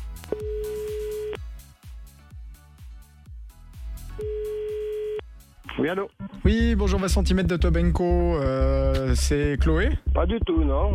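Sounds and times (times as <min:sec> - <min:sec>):
ringback tone on a telephone line as a call is placed: 0:00.3 - 0:01.4, 0:04.2 - 0:05.2
speech: 0:05.8 - 0:10.9.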